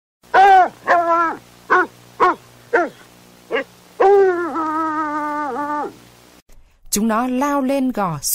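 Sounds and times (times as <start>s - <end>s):
hunting dog yelping short and sharp: 0.3s - 6.0s
speech: 7.0s - 8.3s.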